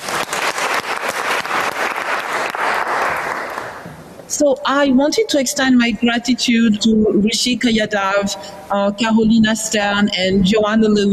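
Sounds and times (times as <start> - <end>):
applause from a sizable audience: 0.0 - 3.8
speech: 4.4 - 11.1.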